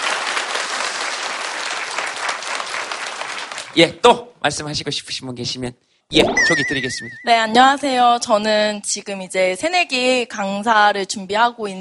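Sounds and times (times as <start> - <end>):
audience applause: 0.0 - 3.8
speech: 3.7 - 11.7.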